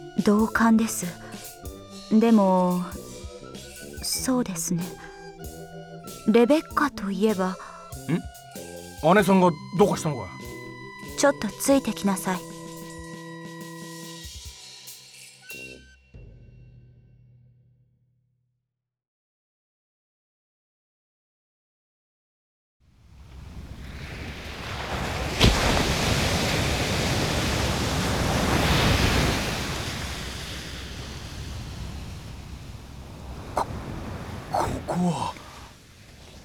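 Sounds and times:
speech: 0.2s - 1.3s, 2.1s - 3.0s, 4.1s - 5.1s, 6.3s - 8.3s, 9.0s - 10.4s, 11.2s - 12.5s
waves washing onto a seashore below steep cliffs: 23.1s - 36.4s.

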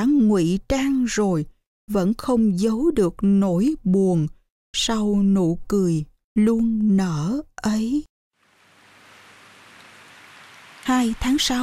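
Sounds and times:
speech: 0.0s - 8.1s, 10.9s - 11.6s
rain dripping from a leaf roof and trees: 8.4s - 11.6s.

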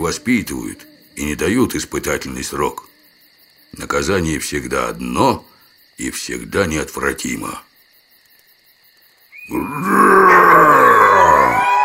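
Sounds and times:
speech: 0.0s - 2.9s, 3.7s - 7.7s, 9.5s - 10.2s
human voice imitating a beast's roar: 9.5s - 11.8s.

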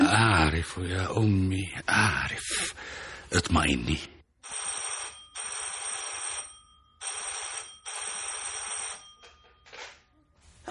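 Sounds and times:
speech: 0.1s - 4.2s
telephone ringing in loud bright electronic bursts: 4.4s - 10.6s.

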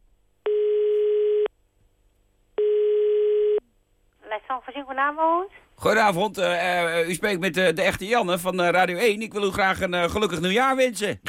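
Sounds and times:
outgoing telephone call ringback tones: 0.5s - 1.5s, 2.6s - 3.6s
speech: 4.5s - 11.2s.

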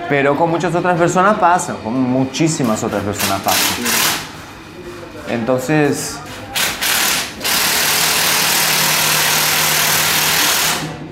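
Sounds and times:
speech: 0.1s - 4.2s, 5.3s - 6.3s
power tool driving in screws: 6.6s - 10.9s.

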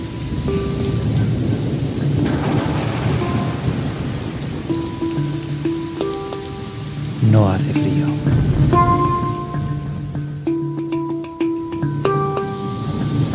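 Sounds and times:
dense steady hiss of heavy rain: 0.0s - 13.3s
thunder rumbling during a heavy rainstorm: 0.0s - 13.3s.

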